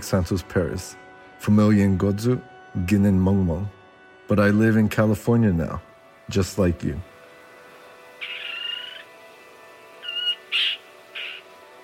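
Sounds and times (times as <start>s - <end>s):
speech: 0.1s - 7.1s
kingfisher giving harsh raspy calls: 8.2s - 9.2s, 10.0s - 11.8s.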